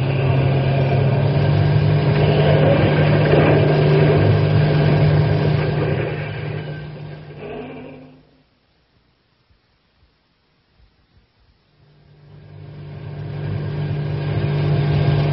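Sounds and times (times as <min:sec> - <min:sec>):
truck engine driven at full speed: 0:00.0 - 0:08.4, 0:12.1 - 0:15.3.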